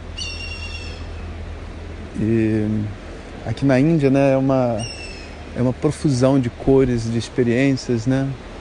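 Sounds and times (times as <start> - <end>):
steady low outdoor rumble: 0.0 - 8.6
eagle calling from its nest in a large Indian fig tree in India: 0.2 - 1.2, 4.7 - 5.4
speech: 2.2 - 8.5.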